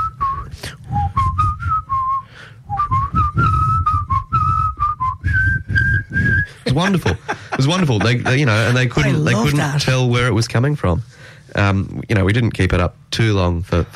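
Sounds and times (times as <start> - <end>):
person whistling a short clear melodic phrase of a song: 0.0 - 6.6
low rumble: 0.0 - 13.9
laughter: 6.5 - 9.8
speech: 6.8 - 13.9.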